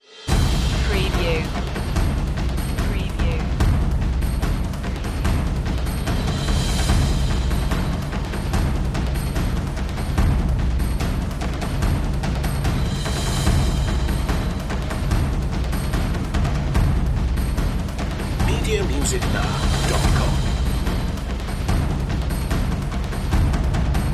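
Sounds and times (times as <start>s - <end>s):
percussion mix: 0.0s - 24.1s.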